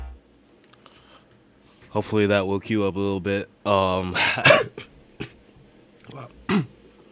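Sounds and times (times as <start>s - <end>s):
speech: 1.9s - 4.9s
person coughing: 4.1s - 5.4s, 6.5s - 6.7s.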